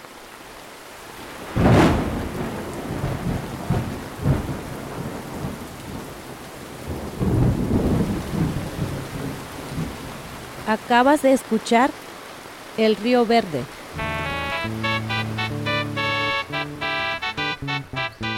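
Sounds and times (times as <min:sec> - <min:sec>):
steady heavy rain: 0:00.0 - 0:18.3
rolling thunder: 0:01.5 - 0:10.4
speech: 0:10.7 - 0:12.0, 0:12.8 - 0:13.8.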